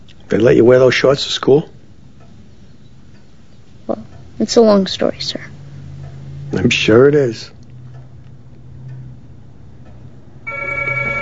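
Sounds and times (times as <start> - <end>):
low hum: 0.0 - 11.2
speech: 0.3 - 1.8, 4.4 - 5.5, 6.6 - 7.6
telephone ringing: 10.5 - 11.2.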